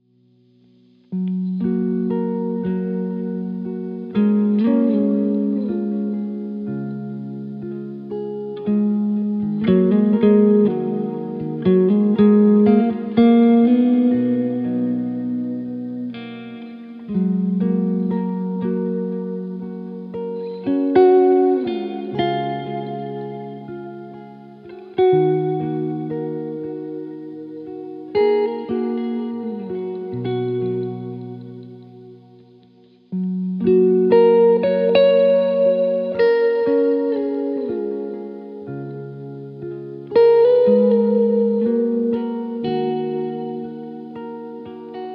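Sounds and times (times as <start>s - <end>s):
calm guitar music: 0.0s - 45.1s.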